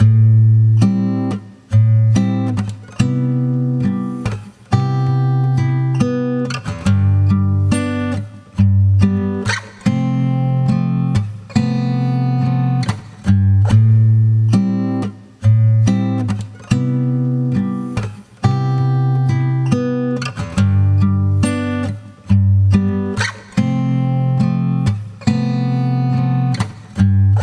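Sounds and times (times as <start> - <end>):
acoustic guitar through brainworx bx console: 0.0 - 27.4.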